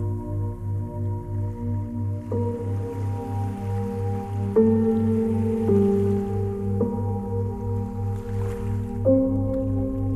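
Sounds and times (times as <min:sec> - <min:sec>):
faint gentle waves: 0:00.0 - 0:10.1
soft music with sustained tones: 0:00.0 - 0:10.1.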